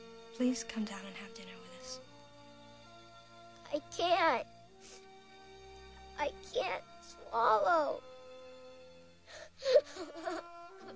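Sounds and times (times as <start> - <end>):
speech: 0.4 - 2.1, 3.7 - 5.0, 6.2 - 8.1
boy sobbing into a pillow: 9.4 - 10.9.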